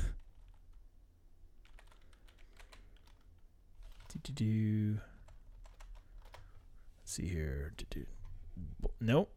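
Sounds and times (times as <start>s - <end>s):
typing on a computer keyboard: 0.2s - 0.8s, 1.6s - 4.2s, 5.2s - 6.6s
speech: 4.1s - 5.1s, 7.1s - 9.3s.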